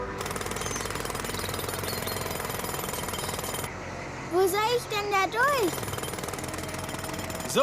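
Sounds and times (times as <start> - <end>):
jackhammer pounding at a construction site: 0.1 - 3.7, 5.3 - 7.6
speech: 4.4 - 5.9.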